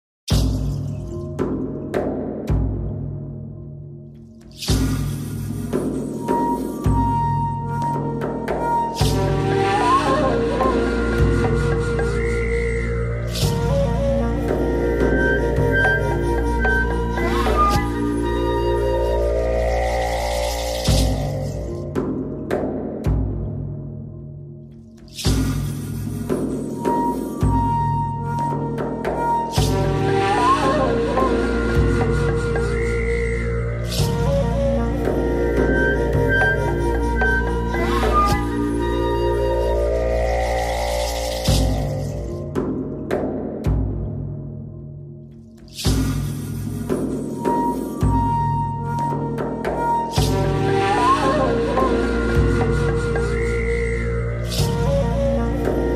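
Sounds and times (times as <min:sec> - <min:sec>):
meditation music: 0:00.4 - 0:55.9.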